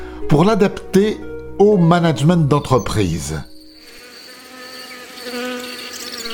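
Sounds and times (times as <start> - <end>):
speech: 0.2 - 3.5
many honeybees buzzing around hives at an apiary: 3.5 - 6.3.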